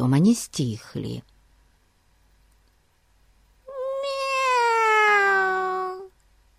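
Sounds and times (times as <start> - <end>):
speech: 0.0 - 1.3
kitten meowing loudly: 3.7 - 6.1.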